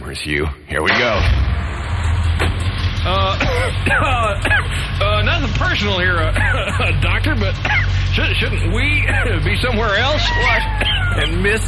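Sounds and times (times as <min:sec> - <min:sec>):
speech: 0:00.1 - 0:01.8, 0:02.4 - 0:04.8, 0:05.4 - 0:11.6
car engine starting in a garage: 0:00.9 - 0:11.6
laughter: 0:03.1 - 0:11.6.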